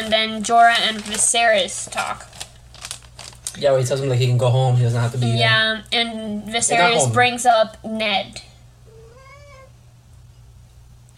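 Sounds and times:
speech: 0:00.1 - 0:02.4, 0:03.6 - 0:08.5
small house cat meowing: 0:08.9 - 0:09.8.

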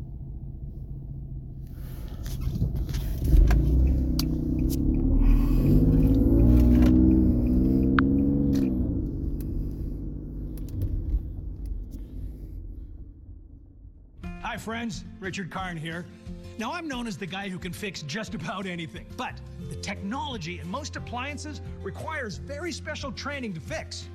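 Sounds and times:
continuous road noise: 0:00.0 - 0:14.3
car engine rumble accelerating with a rising whine in traffic: 0:00.0 - 0:14.5
speech: 0:14.6 - 0:24.1.

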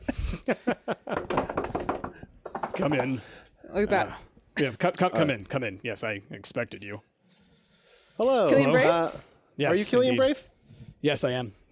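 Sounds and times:
speech: 0:00.5 - 0:01.2, 0:02.8 - 0:07.1, 0:08.2 - 0:11.6
sharp knocking on a door: 0:01.1 - 0:03.2.

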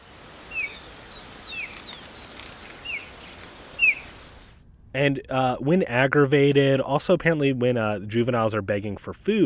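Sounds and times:
faint hiss: 0:00.0 - 0:09.4
white-tailed kite chirping calls: 0:00.3 - 0:04.5
speech: 0:05.0 - 0:09.4.

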